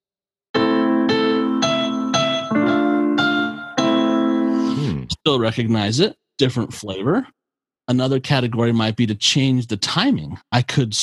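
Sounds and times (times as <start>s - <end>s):
familiar nursery tune played in a minor key: 0.6s - 5.0s
speech: 5.2s - 11.0s.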